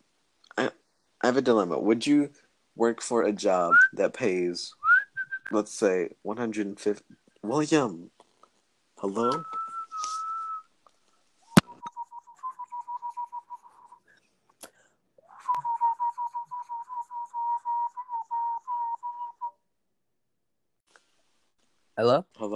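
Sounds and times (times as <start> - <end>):
speech: 0.6 - 4.8, 5.5 - 8.2, 9.0 - 9.6, 22.0 - 22.5
person whistling: 4.8 - 5.5, 9.2 - 10.7, 11.5 - 14.1, 15.2 - 19.6.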